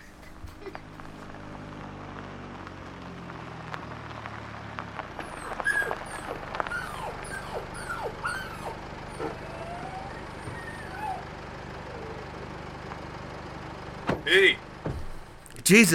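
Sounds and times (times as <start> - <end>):
car engine rumbling: 0.0 - 15.9
dog yelping and whimpering in pain: 5.2 - 12.3
speech: 15.7 - 15.9.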